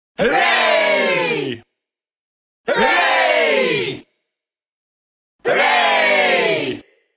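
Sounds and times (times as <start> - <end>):
small group of people shouting a holiday cheer: 0.2 - 1.6, 2.7 - 4.0, 5.4 - 6.8.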